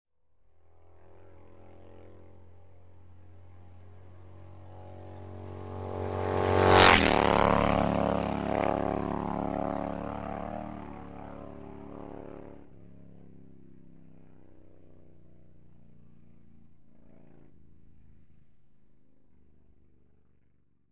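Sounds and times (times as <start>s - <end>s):
Harley-Davidson motorcycle passing by: 0.5s - 18.5s.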